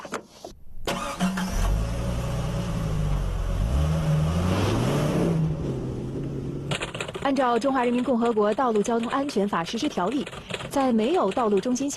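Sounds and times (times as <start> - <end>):
car engine revving at 30 km/h: 0.9 - 6.9
speech: 7.3 - 11.9.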